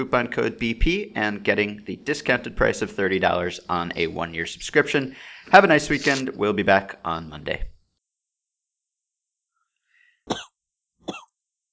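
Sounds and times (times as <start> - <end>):
speech: 0.0 - 7.7
faint breath: 5.1 - 6.2, 9.7 - 10.2
person coughing softly: 10.3 - 10.5, 11.1 - 11.3.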